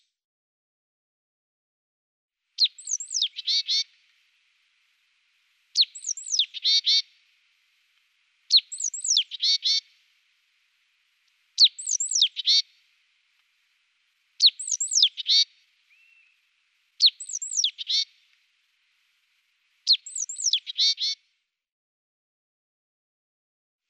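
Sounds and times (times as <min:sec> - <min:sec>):
great tit song: 0:02.6 - 0:21.2.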